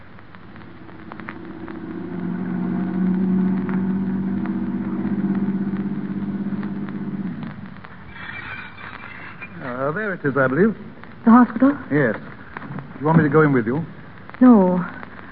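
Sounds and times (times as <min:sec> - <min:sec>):
car engine rumbling: 0:00.0 - 0:09.4
speech: 0:10.2 - 0:12.3, 0:13.0 - 0:15.0.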